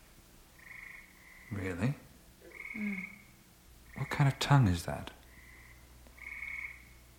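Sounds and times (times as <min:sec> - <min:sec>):
faint low hum: 0:00.0 - 0:07.1
frog giving a high trilling call: 0:00.6 - 0:04.5, 0:05.3 - 0:07.0
speech: 0:01.5 - 0:02.0, 0:02.8 - 0:03.2, 0:04.0 - 0:05.2.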